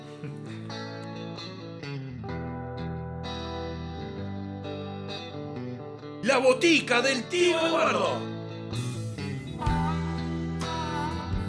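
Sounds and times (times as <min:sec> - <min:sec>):
thick distorted electric guitar sustaining heavy chords: 0:00.0 - 0:11.4
rock band playing: 0:06.2 - 0:10.4
speech: 0:06.3 - 0:08.3.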